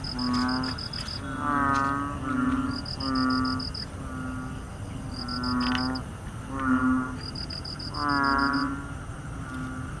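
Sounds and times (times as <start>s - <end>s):
Kaloula pulchra calling: 0.0s - 4.6s, 5.2s - 8.9s.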